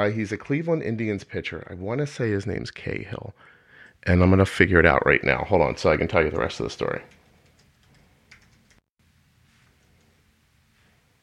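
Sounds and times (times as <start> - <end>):
speech: 0.0 - 7.2
typing on a computer keyboard: 7.1 - 8.8.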